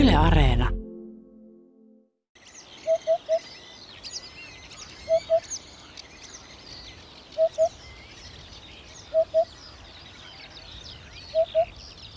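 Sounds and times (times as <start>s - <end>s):
speech: 0.1s - 0.8s
birds singing at a golf course in Kotka Finland: 2.4s - 12.1s.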